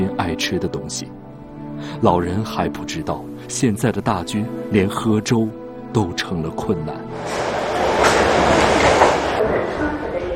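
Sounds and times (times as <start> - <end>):
speech: 0.0 - 7.6
subway train rumbling on rails: 7.1 - 10.3.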